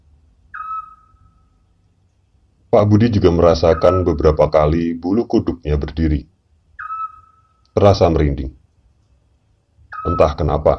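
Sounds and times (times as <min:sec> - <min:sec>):
night bird whistling call: 0:00.4 - 0:01.7, 0:03.4 - 0:04.4, 0:06.7 - 0:07.8, 0:09.8 - 0:10.7
speech: 0:02.7 - 0:06.3, 0:07.8 - 0:08.6, 0:10.0 - 0:10.7.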